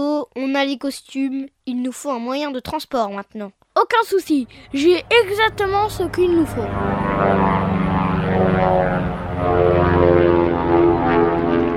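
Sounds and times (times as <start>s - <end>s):
speech: 0.0s - 7.8s, 8.6s - 9.7s
propeller-plane engine droning: 4.4s - 11.7s.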